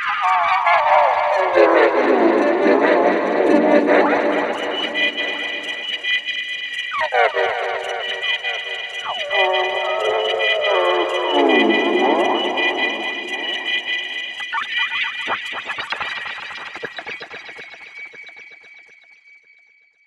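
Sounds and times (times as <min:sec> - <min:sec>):
synthesized insect sound from a Roland V-Synth factory patch: 0:00.2 - 0:17.3.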